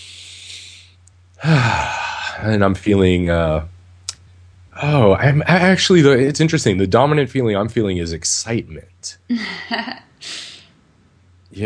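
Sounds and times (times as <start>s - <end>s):
deep breath: 0.0s - 2.4s, 10.2s - 10.8s
speech: 1.4s - 3.8s, 4.8s - 10.4s.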